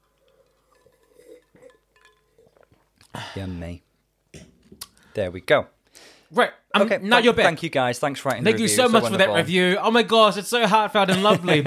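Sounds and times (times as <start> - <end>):
drinking glasses clinking in a toast: 0.0 - 3.0
speech: 3.4 - 3.9, 5.2 - 11.6
laughter: 11.1 - 11.6.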